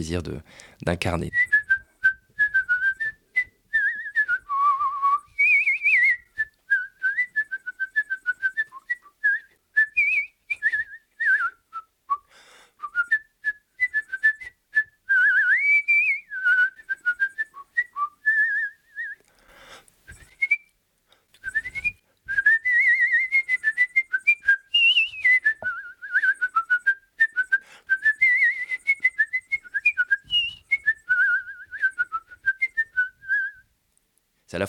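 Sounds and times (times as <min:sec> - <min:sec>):
speech: 0:00.0 - 0:01.5
person whistling an opera aria melody: 0:01.4 - 0:19.3, 0:20.1 - 0:20.8, 0:21.4 - 0:33.7.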